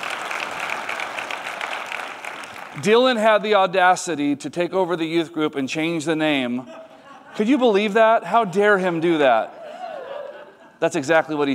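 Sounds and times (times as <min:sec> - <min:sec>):
crowd applauding: 0:00.0 - 0:02.9
speech: 0:02.8 - 0:06.8, 0:07.4 - 0:09.6, 0:10.8 - 0:11.5
laughter: 0:06.5 - 0:07.9, 0:08.9 - 0:11.4.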